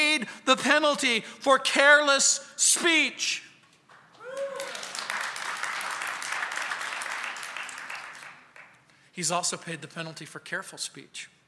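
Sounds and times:
speech: 0:00.2 - 0:03.5, 0:09.2 - 0:11.4
audience applause: 0:04.2 - 0:08.7.

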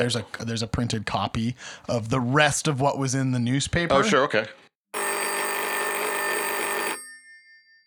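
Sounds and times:
speech: 0:00.0 - 0:04.6
office telephone bell ringing: 0:05.0 - 0:07.8.

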